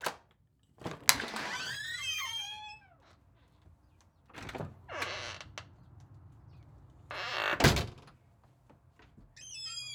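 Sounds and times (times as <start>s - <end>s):
household screen door closing: 0.8s - 8.2s, 9.1s - 9.9s
household front door opening: 0.9s - 3.2s, 4.3s - 6.2s, 7.1s - 8.2s, 9.1s - 9.9s.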